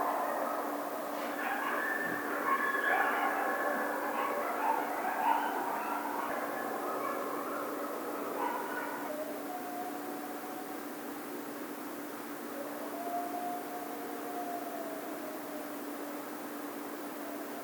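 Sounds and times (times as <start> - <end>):
coyote yipping and howling: 0.0 - 11.2, 12.5 - 16.3
background hiss: 0.0 - 17.6.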